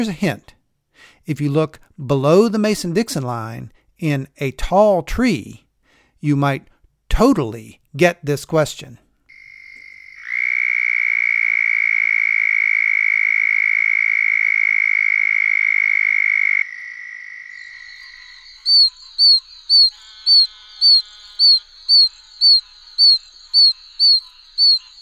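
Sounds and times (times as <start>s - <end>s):
speech: 0.0s - 5.6s, 6.2s - 9.0s
southern toad trilling: 9.3s - 25.0s.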